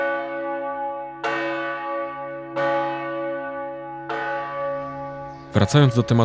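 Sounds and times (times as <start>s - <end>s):
large deep church tower bell tolling: 0.0s - 6.2s
speech: 5.5s - 6.2s.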